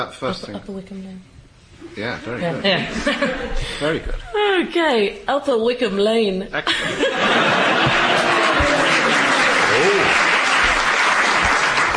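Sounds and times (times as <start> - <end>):
speech: 0.0 - 8.2
laughter: 2.7 - 3.8, 6.7 - 10.6
crowd clapping: 7.4 - 11.9.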